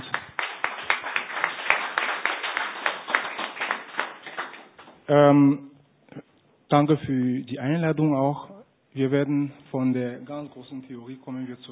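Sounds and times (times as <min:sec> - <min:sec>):
audience applauding in congratulation for an EU prize: 0:00.0 - 0:05.0
speech: 0:05.1 - 0:11.7.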